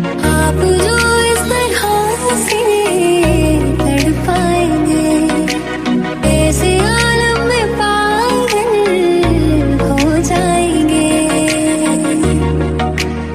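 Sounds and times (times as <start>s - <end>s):
woman singing romantic Hindi song ringtone: 0.2s - 13.2s.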